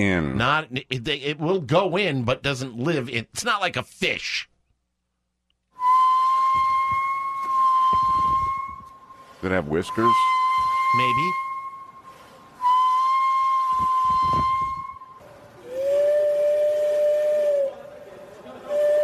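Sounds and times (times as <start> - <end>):
speech: 0.0 - 4.5, 9.4 - 11.4
train whistle blasts: 5.8 - 17.8, 18.7 - 19.0.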